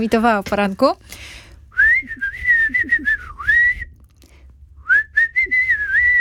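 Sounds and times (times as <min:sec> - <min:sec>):
speech: 0:00.0 - 0:01.4, 0:02.0 - 0:03.2
person whistling a wavering melody: 0:01.8 - 0:04.0, 0:04.8 - 0:06.1.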